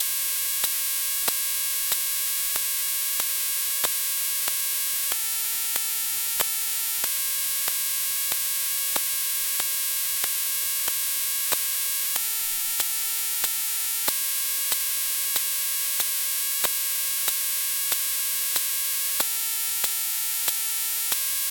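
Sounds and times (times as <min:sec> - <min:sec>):
electromagnetic field noise of wireless landline telephone: 0:00.0 - 0:21.4.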